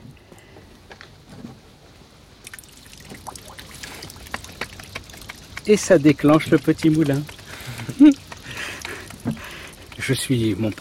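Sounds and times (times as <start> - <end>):
water pouring from a pipe beside an artificial lake: 2.4 - 10.7
speech: 5.7 - 7.4, 8.0 - 8.2, 10.1 - 10.7.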